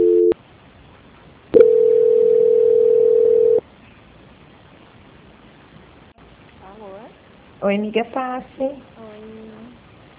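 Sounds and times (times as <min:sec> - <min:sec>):
telephone line tones during a call transfer: 0:00.0 - 0:00.4, 0:01.6 - 0:03.6
speech: 0:07.7 - 0:09.0.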